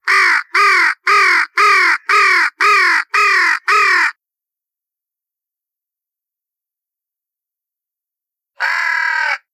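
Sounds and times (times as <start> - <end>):
crows: 0.0 - 4.2, 8.6 - 9.5.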